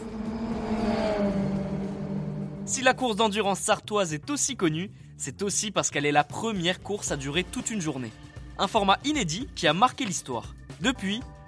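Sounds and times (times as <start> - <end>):
race car engine revving during 24-hour endurance race in the Sarthe France: 0.0 - 3.2
speech: 2.7 - 11.4.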